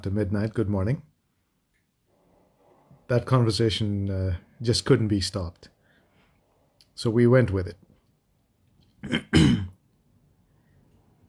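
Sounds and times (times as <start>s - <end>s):
speech: 0.0s - 1.1s, 3.1s - 5.7s, 7.0s - 7.8s, 9.0s - 9.7s
person clearing throat: 9.0s - 9.8s.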